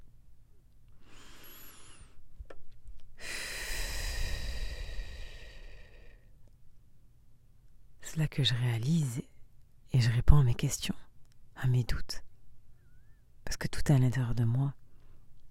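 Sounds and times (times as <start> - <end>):
person taking a deep breath with eyes closed: 1.0 - 2.2, 3.2 - 6.3
speech: 8.2 - 9.3, 10.0 - 11.0, 11.6 - 12.3, 13.6 - 14.8.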